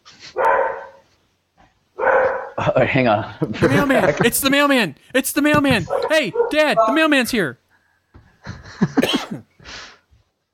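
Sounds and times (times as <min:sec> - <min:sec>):
dog barking indoors: 0:00.3 - 0:01.1, 0:02.0 - 0:02.6, 0:05.8 - 0:07.1
speech: 0:02.6 - 0:07.6
laughter: 0:03.4 - 0:07.1, 0:08.4 - 0:09.2.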